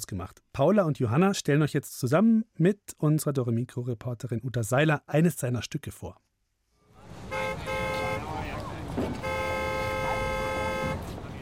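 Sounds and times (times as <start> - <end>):
speech: 0.0 - 6.3
busy city street traffic rumbling: 6.9 - 11.4
car horns blaring: 7.0 - 11.4.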